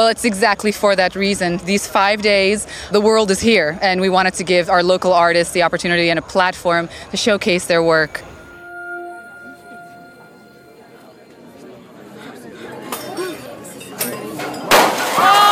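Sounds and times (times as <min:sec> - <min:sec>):
speech: 0:00.0 - 0:08.3
crowd murmuring on an outdoor terrace: 0:06.1 - 0:14.6
body striking and shattering a large sheet of glass: 0:14.7 - 0:15.4.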